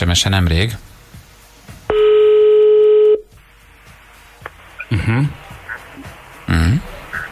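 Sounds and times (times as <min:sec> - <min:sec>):
telephone ringing on a call placed to a radio listener: 0:01.9 - 0:03.2
voices talking: 0:04.5 - 0:07.3.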